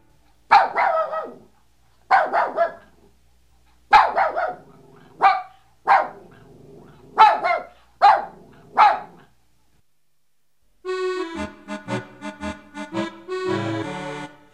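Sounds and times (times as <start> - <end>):
dog barking in a house: 0.5 - 3.1, 3.9 - 9.4.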